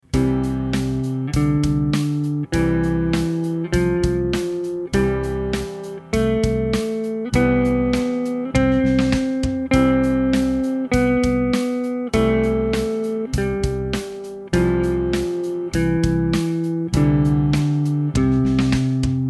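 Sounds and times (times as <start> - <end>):
major scale played: 0.1 - 19.2.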